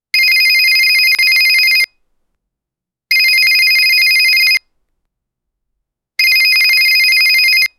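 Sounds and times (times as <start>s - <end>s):
cell phone ringing: 0.2s - 2.0s, 3.1s - 4.7s, 6.2s - 7.7s.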